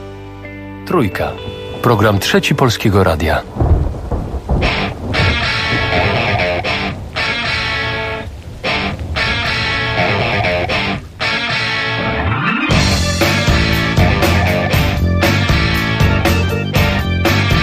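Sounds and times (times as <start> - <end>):
speech: 0.9 - 3.7
sudden summer rain: 1.4 - 17.6
thunder rumbling: 1.4 - 17.6.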